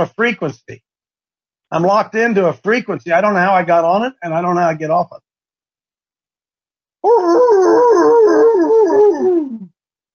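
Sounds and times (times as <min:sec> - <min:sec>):
speech: 0:00.0 - 0:00.9, 0:01.7 - 0:05.2, 0:07.0 - 0:09.7
dog howling at a siren: 0:07.0 - 0:09.7.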